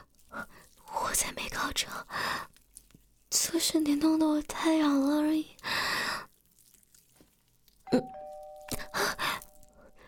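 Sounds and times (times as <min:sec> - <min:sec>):
speech: 0:01.2 - 0:02.5, 0:03.5 - 0:05.8
two-tone ding-dong doorbell chime: 0:07.9 - 0:10.0.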